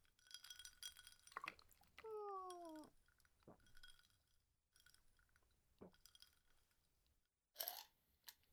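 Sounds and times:
glasses clinking in a toast: 0.0s - 4.1s
liquid pouring into glass: 0.0s - 4.1s
glass clattering: 0.0s - 4.2s, 4.8s - 6.7s.

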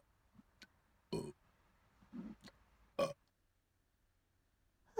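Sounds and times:
short burps and a long loud drawn-out belch: 1.1s - 1.3s.

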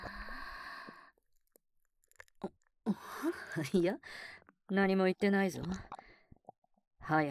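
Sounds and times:
chewing and crunching food: 0.8s - 2.7s
speech: 2.4s - 6.0s, 7.1s - 7.2s.

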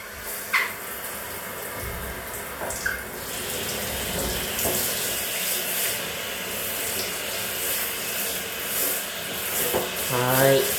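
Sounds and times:
running water rinsing soap suds off a body: 0.2s - 10.7s.

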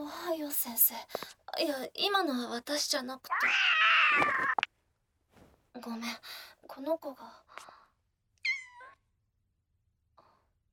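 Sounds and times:
speech: 0.3s - 4.7s, 5.8s - 7.7s
cat meowing: 3.3s - 4.7s, 8.4s - 9.0s.

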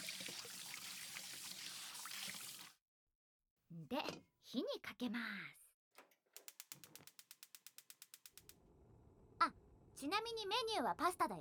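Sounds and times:
hot water pouring into a cooking pot for pasta: 0.0s - 2.8s
speech: 3.8s - 5.6s, 9.4s - 11.4s.

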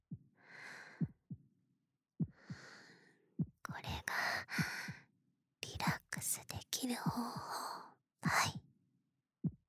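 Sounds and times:
heartbeat thumping: 2.2s - 2.7s, 3.4s - 5.0s, 5.8s - 6.3s, 7.0s - 7.6s, 9.4s - 9.6s
speech: 6.8s - 7.6s.

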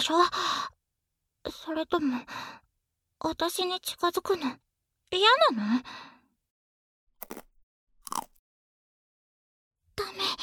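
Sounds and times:
speech: 0.0s - 0.6s, 1.4s - 2.5s, 3.2s - 6.1s
crisp crunches of someone biting into Pocky sticks: 7.2s - 8.4s.

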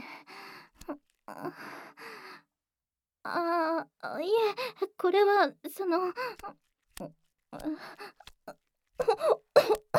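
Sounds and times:
speech: 1.3s - 1.8s, 3.2s - 8.2s
person choking and coughing in hot weather: 9.1s - 9.9s.

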